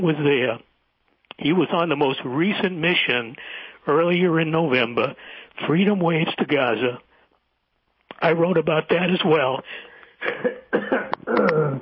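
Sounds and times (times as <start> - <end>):
speech: 0.0 - 0.7, 1.3 - 7.1, 8.2 - 11.8
person clearing throat with a frog in the throat: 10.2 - 11.8
person coughing with a frog in the throat: 10.2 - 11.8.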